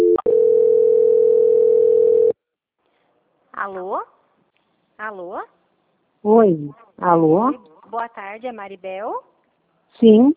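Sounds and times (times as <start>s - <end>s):
steady telephone line tone as a call is transferred: 0.0s - 2.4s
speech: 3.6s - 4.2s, 5.0s - 5.6s, 6.2s - 9.3s, 10.0s - 10.3s.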